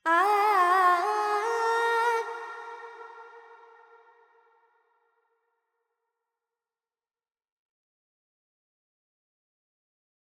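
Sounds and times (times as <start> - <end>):
female Carnatic vocal alap in pentatonic scale: 0.0 - 4.1.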